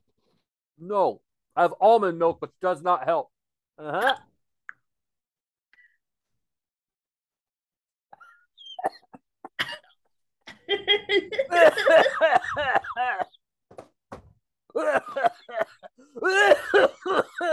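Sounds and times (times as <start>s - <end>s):
speech: 0.8s - 4.3s, 10.7s - 13.4s, 14.8s - 17.5s
person in a prolonged coughing fit: 8.8s - 9.9s, 11.4s - 13.3s, 16.2s - 17.5s.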